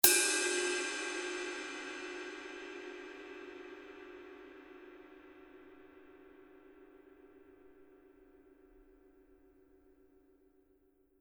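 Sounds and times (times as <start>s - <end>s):
26-inch gong: 0.0s - 7.8s.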